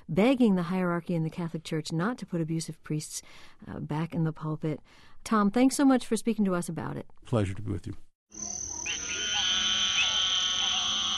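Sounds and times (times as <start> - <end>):
speech: 0.1 - 8.6
frogs croaking in a chorus of buzzing trills: 8.3 - 11.1
sustained shrill whine: 8.3 - 11.1.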